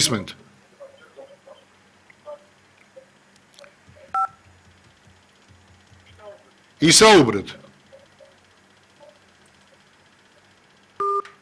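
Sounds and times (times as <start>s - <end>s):
speech: 0.0s - 0.4s, 6.8s - 7.6s
low steady hum: 0.0s - 11.4s
telephone line beeps as a caller is put through: 4.2s - 4.4s, 11.0s - 11.3s.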